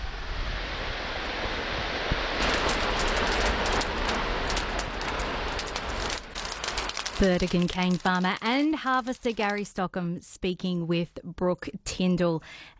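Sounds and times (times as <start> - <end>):
sugar cane fire burning a dried-out paddock in the Burdekin: 0.0 - 9.7
speech: 7.2 - 12.7.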